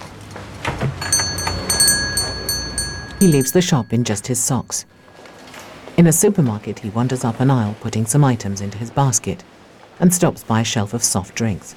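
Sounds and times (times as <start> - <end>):
alarm clock being handled and set with clicks and knocks: 1.0 - 4.9
thin high ringing tone: 1.0 - 6.0
speech: 3.2 - 5.0, 6.0 - 11.7.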